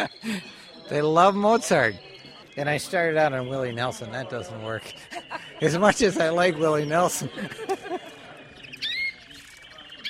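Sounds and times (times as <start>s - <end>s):
laughter: 0.0s - 0.9s, 4.8s - 8.9s
speech: 0.0s - 7.7s
small caged songbird singing bright high chirps and trills: 0.0s - 10.0s.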